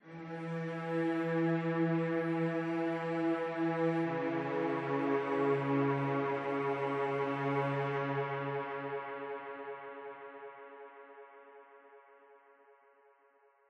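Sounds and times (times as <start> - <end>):
cello diving music: 0.1 - 8.9.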